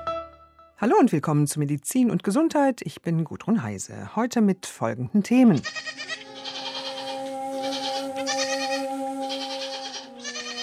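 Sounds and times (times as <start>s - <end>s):
speech: 0.8s - 6.0s
goats bleating: 5.5s - 10.6s
steady tonal hum: 6.2s - 10.6s.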